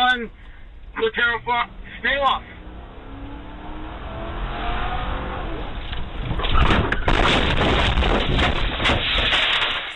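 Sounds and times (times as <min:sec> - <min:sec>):
speech: 0:00.2 - 0:02.5
police vehicle engine roar: 0:00.9 - 0:08.2
police vehicle ramming a fleeing suspect's car: 0:04.5 - 0:09.9
rumbling and crunching of colliding vehicles: 0:05.6 - 0:09.9.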